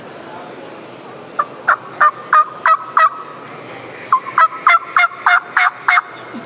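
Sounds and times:
turkey yelps: 1.4s - 3.3s, 4.1s - 6.2s.

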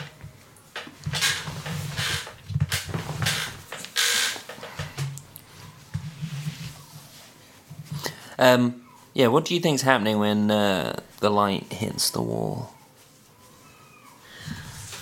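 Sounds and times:
door hinges creaking: 1.0s - 5.0s
speech: 8.4s - 12.8s.

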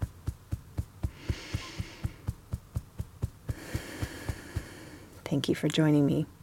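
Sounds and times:
fingertips tapping on the sternum: 0.0s - 5.9s
breathy hiss: 1.0s - 2.4s, 3.4s - 5.2s
speech: 5.3s - 6.4s.

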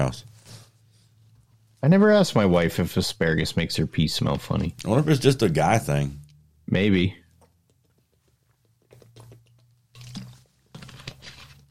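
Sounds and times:
speech: 0.0s - 0.3s, 1.8s - 7.2s
person chugging water: 7.4s - 10.4s.

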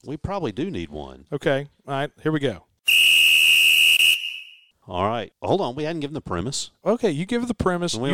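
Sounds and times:
speech: 0.0s - 3.1s, 4.9s - 8.1s
shrill whistle blast: 2.9s - 4.7s.

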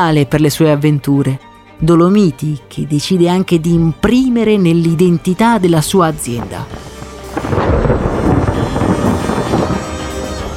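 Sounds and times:
speech: 0.0s - 7.9s
rolling thunder from a lightning strike: 6.4s - 10.5s.

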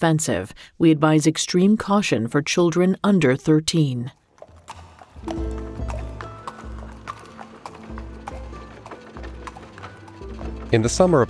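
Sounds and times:
speech: 0.0s - 4.2s, 10.7s - 11.2s
horse hooves clip-clopping: 4.2s - 11.2s
low rumbling street background: 4.6s - 11.2s.

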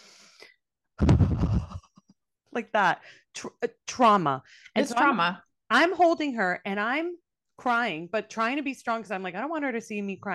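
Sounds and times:
speech: 1.0s - 1.3s, 2.6s - 10.3s
person imitating heavy breathing of a baby girl: 1.0s - 2.0s.

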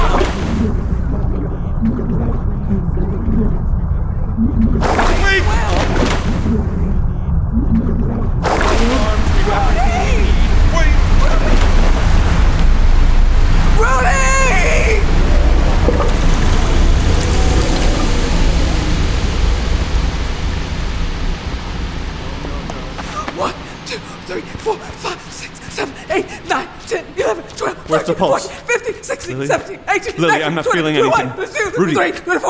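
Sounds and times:
strong rushing water current: 0.0s - 2.8s, 4.4s - 7.0s, 7.6s - 26.6s
faint warbling tones: 0.0s - 25.1s
speech: 28.2s - 28.4s, 29.4s - 32.4s.

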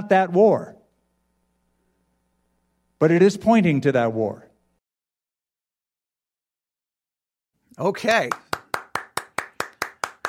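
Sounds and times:
speech: 0.1s - 0.8s, 3.0s - 4.4s, 7.8s - 8.4s
crisp hand claps in a steady rhythm: 8.2s - 10.2s.

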